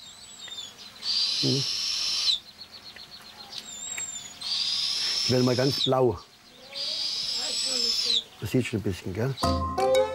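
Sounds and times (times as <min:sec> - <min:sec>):
young eagle owl raspy hissing call: 0:00.3 - 0:02.4, 0:03.7 - 0:06.0, 0:06.6 - 0:08.4
speech: 0:01.4 - 0:01.8, 0:05.3 - 0:06.3, 0:08.4 - 0:09.8.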